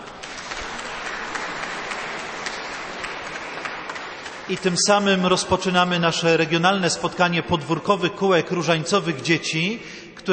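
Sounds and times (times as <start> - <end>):
crowd clapping: 0.0 - 7.1
speech: 4.5 - 10.3.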